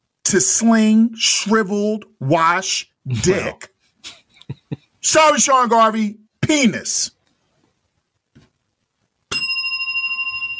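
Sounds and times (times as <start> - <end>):
speech: 0.3 - 4.2, 5.0 - 7.2
hand bell ringing: 9.3 - 10.5.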